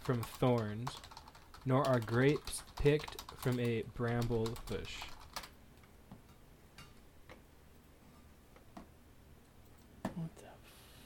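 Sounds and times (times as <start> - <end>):
speech: 0.0 - 5.2
fast typing on a computer keyboard: 0.0 - 5.5
low hum: 0.0 - 11.0.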